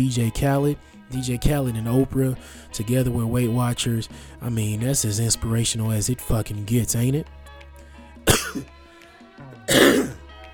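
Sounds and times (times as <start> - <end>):
speech: 0.0 - 7.4, 8.5 - 8.7
loud raspy coughs: 8.3 - 8.7, 9.7 - 10.2.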